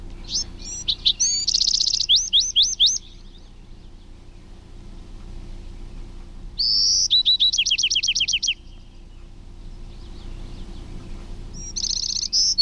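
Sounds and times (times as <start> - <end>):
adult male Bewick's Wren singing: 0.0 - 4.4, 6.6 - 12.6.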